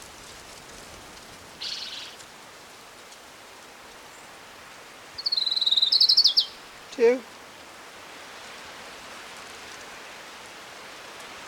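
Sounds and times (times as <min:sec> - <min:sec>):
steady hissing noise: 0:00.0 - 0:11.4
orange-crowned warbler song: 0:01.6 - 0:02.2, 0:05.2 - 0:06.6
speech: 0:07.0 - 0:07.3.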